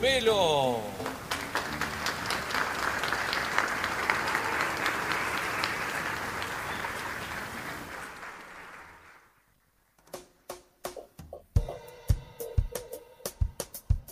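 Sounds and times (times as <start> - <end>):
speech: 0.0 - 1.1
large audience applauding: 0.9 - 9.5.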